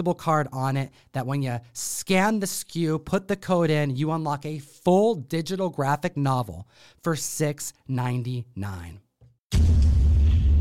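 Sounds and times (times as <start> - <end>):
speech: 0.0 - 9.0, 9.6 - 9.9
explosion sound effect with deep sustained rumble: 9.5 - 10.6.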